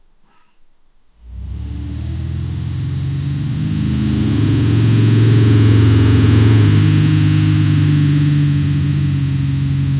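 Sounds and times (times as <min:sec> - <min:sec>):
deep smooth low rpm rumble: 0:01.2 - 0:09.9.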